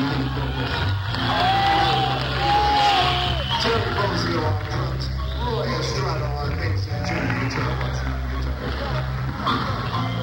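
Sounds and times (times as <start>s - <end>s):
large concert crowd roaring and cheering: 0.0s - 10.2s
sustained whistle from a concert crowd: 3.0s - 3.8s, 9.9s - 10.2s.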